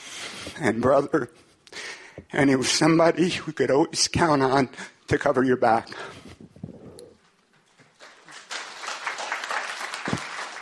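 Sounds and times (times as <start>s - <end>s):
speech: 0.5s - 1.5s, 2.2s - 6.4s
audience applause: 8.0s - 10.5s.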